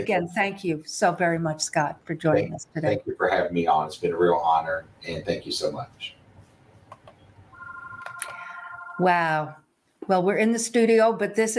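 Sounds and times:
speech: 0.0s - 6.2s, 9.0s - 11.5s
office telephone ringing with a steady electronic trill: 7.6s - 9.3s.

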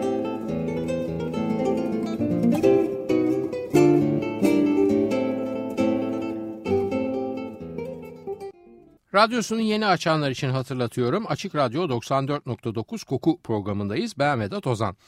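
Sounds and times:
guitar playing a slow melody: 0.0s - 9.0s
speech: 9.2s - 15.0s.

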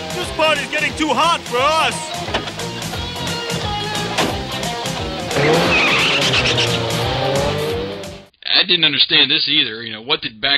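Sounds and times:
speech: 0.2s - 2.2s, 5.4s - 5.7s, 8.6s - 10.5s
car engine roaring as the vehicle peels away: 2.4s - 8.3s
tires squealing against the pavement: 5.2s - 8.2s.

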